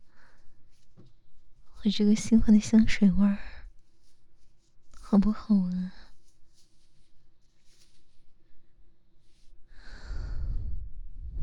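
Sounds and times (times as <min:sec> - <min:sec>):
speech: 0:01.8 - 0:03.5, 0:05.1 - 0:06.0
heavy breathing: 0:09.7 - 0:11.4.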